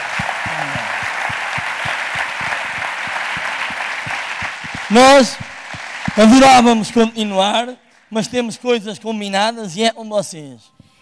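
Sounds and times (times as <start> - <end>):
audience applause at an event: 0.0 - 7.4
speech: 4.9 - 5.5, 6.2 - 10.8.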